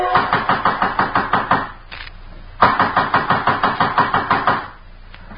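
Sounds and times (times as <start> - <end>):
loud pounding knock on a door: 0.1 - 1.7, 2.6 - 4.7.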